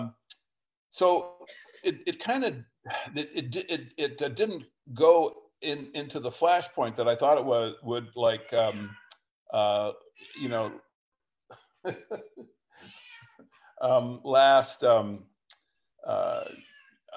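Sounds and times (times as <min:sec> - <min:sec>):
speech: 0:00.9 - 0:10.9, 0:11.8 - 0:13.0, 0:13.8 - 0:15.3, 0:16.0 - 0:17.1
pet cat meowing: 0:08.4 - 0:09.2, 0:10.2 - 0:10.8, 0:12.8 - 0:13.5, 0:16.2 - 0:17.1
laughter: 0:11.8 - 0:12.5.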